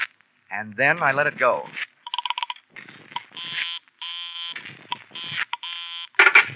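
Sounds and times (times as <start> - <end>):
speech: 0.6 - 1.9
rapid beeps from dialing a number on a phone: 2.1 - 2.6, 3.2 - 6.5
telephone busy signal: 3.2 - 6.5.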